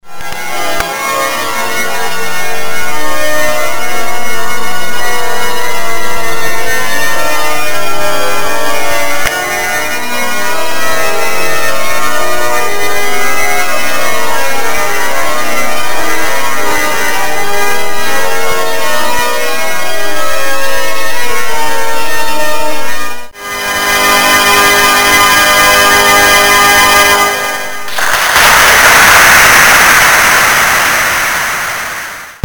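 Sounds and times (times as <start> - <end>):
organ in a church: 0.0 - 32.4.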